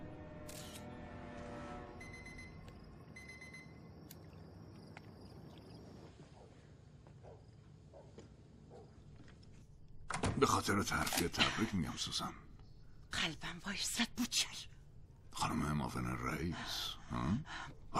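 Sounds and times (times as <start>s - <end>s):
busy hum: 0.0s - 17.9s
camera shutter clicks as photos are taken: 0.5s - 0.8s
speech: 10.4s - 12.5s, 13.2s - 14.7s, 15.4s - 17.9s.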